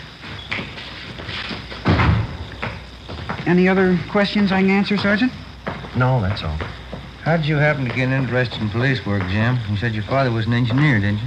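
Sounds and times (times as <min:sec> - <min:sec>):
faint hum: 0:00.0 - 0:11.2
door opening and shutting: 0:01.3 - 0:03.6
speech: 0:03.4 - 0:05.4, 0:06.0 - 0:11.2.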